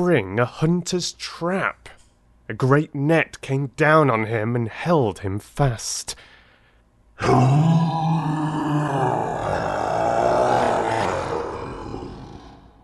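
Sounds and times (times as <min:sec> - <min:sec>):
speech: 0:00.0 - 0:06.3, 0:07.2 - 0:08.2
lion roaring: 0:07.2 - 0:12.8.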